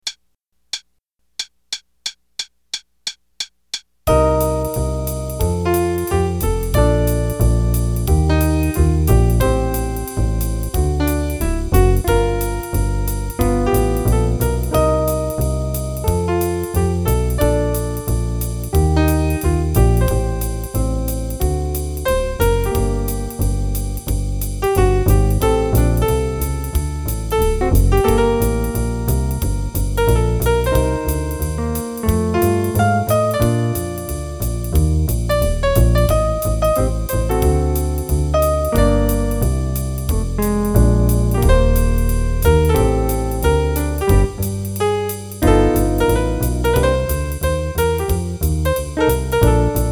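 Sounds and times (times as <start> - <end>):
jazz piano improvisation play-along: 4.1 - 49.9.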